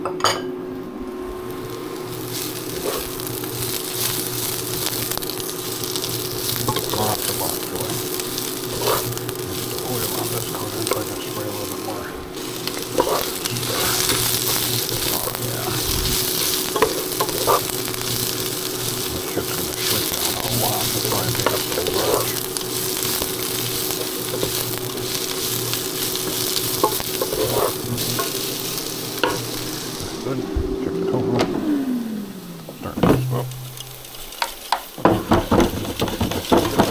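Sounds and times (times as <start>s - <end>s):
bok choy frying in a hot pan: 0.0s - 30.6s, 31.5s - 36.9s.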